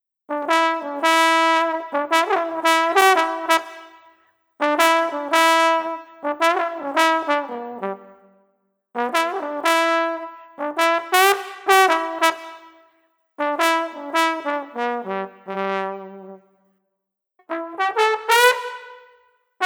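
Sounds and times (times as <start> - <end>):
mellow street trumpet playing: 0.3 - 4.0, 4.6 - 8.2, 9.0 - 12.8, 13.4 - 16.4, 17.5 - 19.6.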